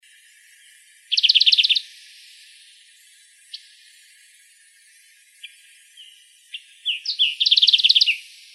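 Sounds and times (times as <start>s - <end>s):
olive warbler calling in Arizona: 1.1s - 1.8s, 5.4s - 8.5s.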